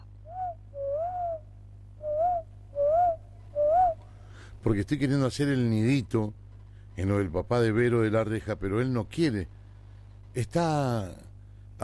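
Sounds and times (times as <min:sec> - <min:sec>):
faint low hum: 0:00.0 - 0:11.8
person whistling in imitation of a songbird: 0:00.3 - 0:01.4, 0:02.0 - 0:04.0
speech: 0:04.6 - 0:06.4, 0:07.0 - 0:09.6, 0:10.3 - 0:11.8.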